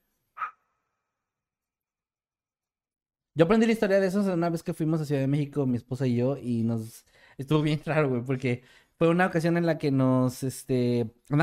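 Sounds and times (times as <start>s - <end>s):
short breathy whistle blast: 0.4s - 0.8s
speech: 3.4s - 11.4s.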